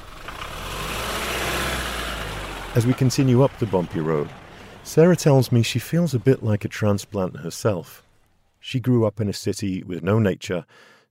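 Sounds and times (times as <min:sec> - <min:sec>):
truck engine idling at a gate stop on a valley road: 0:00.0 - 0:08.7
speech: 0:02.8 - 0:08.0, 0:08.6 - 0:11.0.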